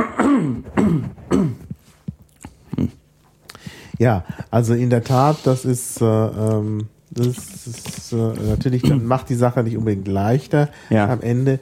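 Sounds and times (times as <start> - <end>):
person clearing throat: 0.0 - 1.8, 2.5 - 3.0, 8.8 - 9.1
speech: 4.0 - 11.6.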